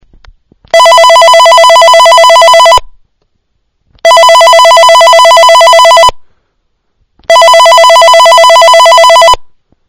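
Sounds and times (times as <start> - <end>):
ringtone: 0.7 - 2.9, 4.0 - 6.2, 7.3 - 9.5.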